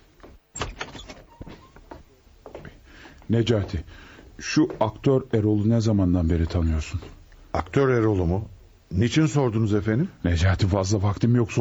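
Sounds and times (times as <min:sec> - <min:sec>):
door opened and shut with a sharp clack: 0:00.0 - 0:02.1
speech: 0:03.3 - 0:11.5.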